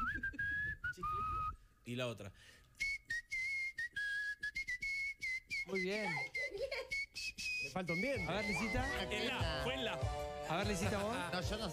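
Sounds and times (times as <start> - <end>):
person whistling while barely moving the lips: 0.0 - 1.7, 2.8 - 9.9
speech: 1.8 - 2.6, 5.7 - 11.7.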